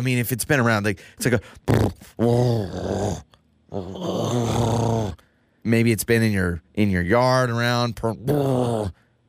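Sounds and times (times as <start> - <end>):
speech: 0.0 - 9.0
person imitating a cat purr with a throaty voice: 1.6 - 5.2.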